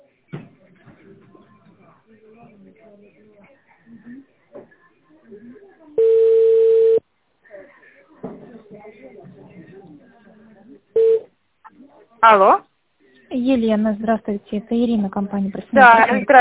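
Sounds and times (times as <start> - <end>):
telephone ringback tone while a call is transferred: 6.0 - 7.0, 11.0 - 11.2
speech: 12.2 - 12.7, 13.4 - 16.4.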